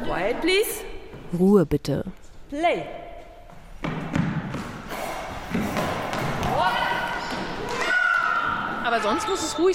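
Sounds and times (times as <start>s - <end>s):
speech: 0.1s - 3.0s, 8.9s - 9.7s
heavy goalball bouncing across a hard indoor floor in a penalty throw: 3.8s - 8.7s.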